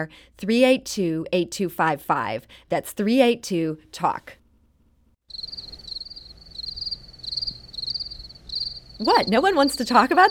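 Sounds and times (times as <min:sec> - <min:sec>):
speech: 0:00.0 - 0:04.4, 0:09.0 - 0:10.2
crickets chirping: 0:05.3 - 0:10.2.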